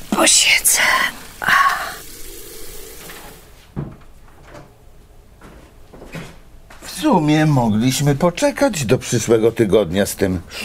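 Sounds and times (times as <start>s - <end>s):
water rushing from a tap: 0.0s - 3.6s
speech: 0.2s - 2.0s, 7.0s - 10.6s
dull clunks and knocks: 3.7s - 4.7s.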